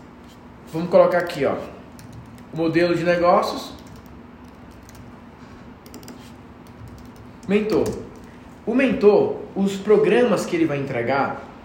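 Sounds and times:
faint low hum: 0.0 - 11.6
speech: 0.7 - 1.8, 2.6 - 3.8, 7.5 - 8.1, 8.7 - 11.5
fast typing on a computer keyboard: 1.1 - 2.6, 3.7 - 5.1, 5.8 - 8.4.

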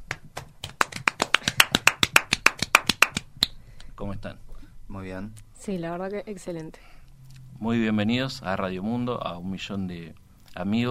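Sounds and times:
small group clapping to welcome guests: 0.0 - 3.6
speech: 4.0 - 7.0, 7.6 - 10.8.

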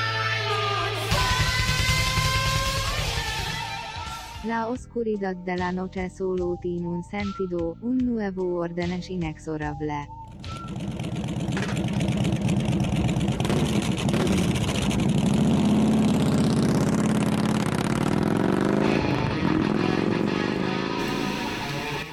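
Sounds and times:
motorcycle engines idling and revving: 0.0 - 3.7, 10.2 - 22.1
speech: 4.4 - 11.0.

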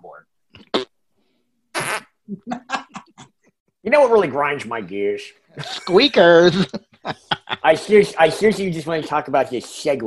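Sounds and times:
loud sputtering fart noises: 0.6 - 1.0, 1.7 - 2.2
speech: 3.9 - 10.0
laughter: 5.6 - 8.6.

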